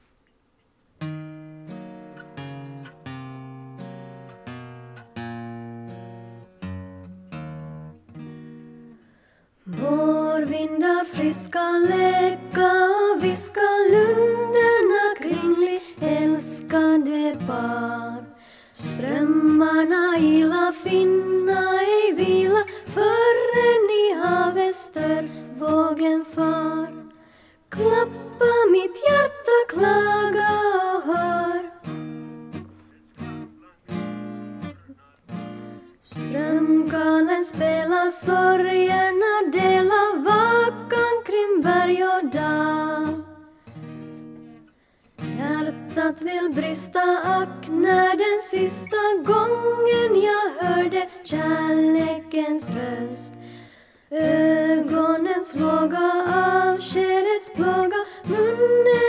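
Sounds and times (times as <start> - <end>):
soprano singing: 9.7 - 31.9, 36.0 - 43.6, 45.3 - 53.5, 54.1 - 59.0.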